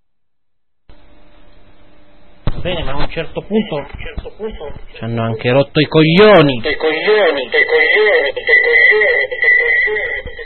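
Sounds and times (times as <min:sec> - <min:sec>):
speech: 0:02.6 - 0:10.4
band-limited radio-like voice processed with heavy echo effect: 0:03.4 - 0:10.3.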